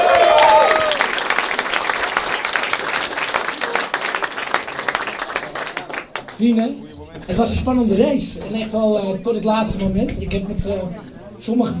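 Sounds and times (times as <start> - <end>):
whistle or cheer: 0.0 - 1.0
crowd applauding: 0.0 - 7.3
speech: 6.4 - 11.7.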